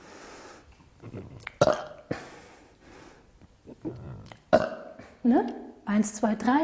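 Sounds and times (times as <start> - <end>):
deliberate burps from swallowing air as a yoga exercise: 1.0 - 2.2, 3.6 - 5.2
quieter gulping and breathy sounds: 1.0 - 2.3, 3.6 - 5.2
speech: 5.2 - 6.6.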